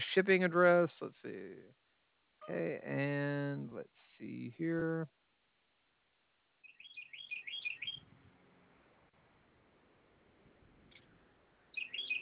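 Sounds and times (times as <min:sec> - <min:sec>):
faint hiss of open air: 0:00.0 - 0:12.1
speech: 0:00.2 - 0:01.8, 0:02.4 - 0:05.2
birds chirping outdoors: 0:06.6 - 0:08.1, 0:11.7 - 0:12.1.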